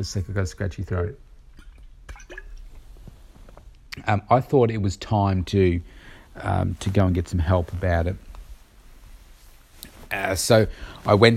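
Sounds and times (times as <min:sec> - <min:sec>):
speech: 0:00.0 - 0:01.3, 0:04.0 - 0:08.3, 0:10.1 - 0:11.3
person sipping water: 0:01.4 - 0:04.0.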